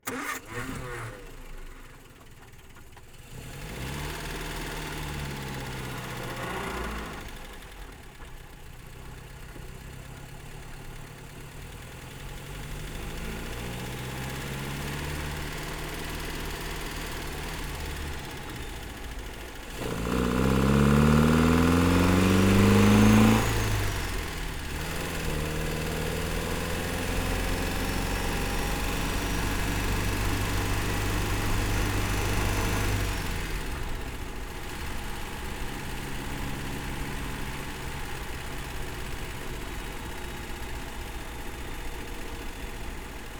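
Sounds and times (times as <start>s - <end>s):
1954 MG TF1500 engine on a country drive: 0.0s - 43.3s.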